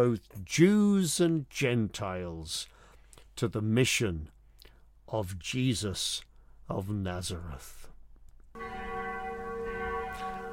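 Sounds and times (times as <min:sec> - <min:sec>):
speech: 0:00.0 - 0:02.8, 0:03.4 - 0:04.4, 0:05.1 - 0:07.8
mission bell ringing: 0:08.6 - 0:10.5.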